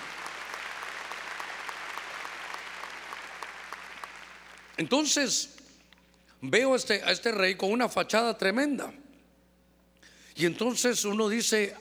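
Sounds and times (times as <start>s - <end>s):
audience clapping loudly: 0.0s - 4.8s
speech: 4.8s - 5.6s, 6.4s - 9.0s, 10.4s - 11.7s.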